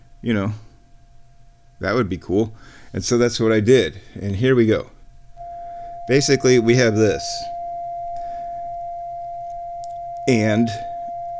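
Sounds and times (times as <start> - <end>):
speech: 0.2 - 0.7, 1.8 - 5.0, 6.1 - 7.5, 10.3 - 10.9
runaway synthesizer oscillator tone: 5.4 - 11.3.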